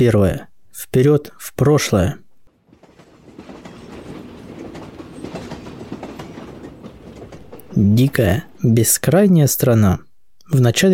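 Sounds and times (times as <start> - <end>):
speech: 0.0 - 2.2, 7.8 - 10.9
speeding train wheels clattering along rails: 2.5 - 9.2.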